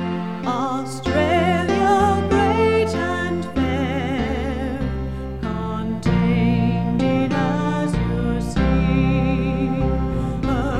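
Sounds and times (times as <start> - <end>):
SATB choir singing: 0.2 - 10.7.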